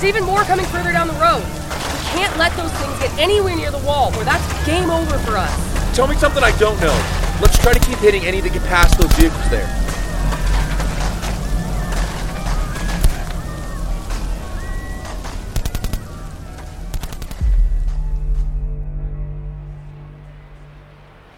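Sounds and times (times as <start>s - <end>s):
speech: 0.0s - 9.8s
explosions in a battle: 0.0s - 19.4s
low drone: 0.0s - 21.3s
heavier deep boom: 5.3s - 21.0s
rapid bursts of gunfire: 7.3s - 8.0s, 15.5s - 16.2s, 16.9s - 17.5s.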